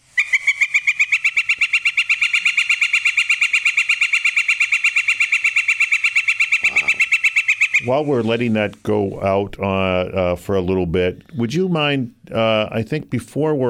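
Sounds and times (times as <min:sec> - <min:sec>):
northern flicker rapid long wick calls: 0:00.0 - 0:09.0
speech: 0:07.8 - 0:13.6.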